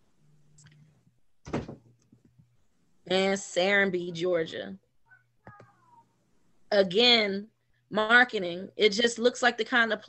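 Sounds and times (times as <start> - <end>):
door shutting with a thud: 1.4 - 1.9
speech: 3.1 - 4.8, 6.7 - 10.0.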